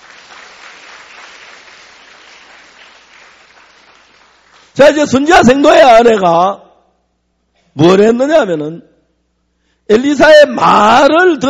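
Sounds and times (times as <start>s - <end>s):
audience clapping: 0.0s - 5.0s
speech: 4.8s - 6.6s, 7.8s - 8.9s, 9.9s - 11.4s.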